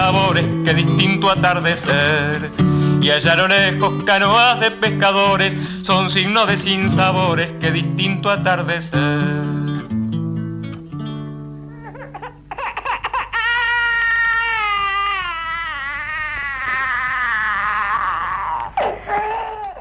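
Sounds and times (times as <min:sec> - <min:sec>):
speech: 0:00.1 - 0:09.6
baby crying: 0:11.7 - 0:19.7.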